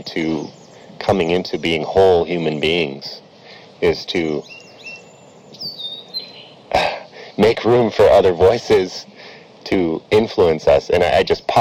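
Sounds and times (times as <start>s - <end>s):
speech: 0.0s - 3.2s, 3.8s - 4.6s, 7.4s - 9.1s, 9.7s - 11.6s
low hum: 0.0s - 11.6s
song sparrow singing in the open: 4.4s - 6.6s.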